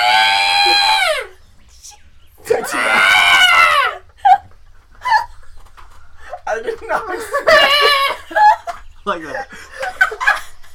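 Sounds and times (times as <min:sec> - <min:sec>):
person imitating monster screeches: 0:00.0 - 0:01.3, 0:02.5 - 0:04.0
laughter: 0:04.2 - 0:10.7
speech: 0:09.1 - 0:09.6.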